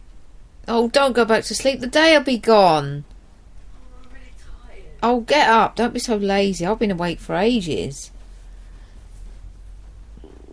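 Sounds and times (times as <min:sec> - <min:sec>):
low hum: 0:00.0 - 0:10.5
speech: 0:00.7 - 0:03.1, 0:05.0 - 0:08.2
stomach rumbling: 0:09.9 - 0:10.5.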